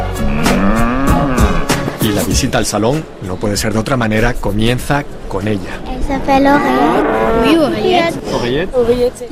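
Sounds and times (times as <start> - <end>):
five-year-old Normandy cow mooing at an agricultural show: 0.2 - 1.8, 6.5 - 8.0
speech: 2.4 - 9.3.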